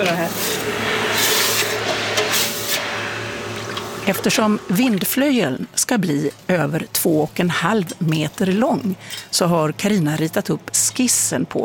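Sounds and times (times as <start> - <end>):
speech: 0.0 - 2.5, 4.0 - 11.6
hot forged metal hissing in a bucket of water: 0.0 - 5.3.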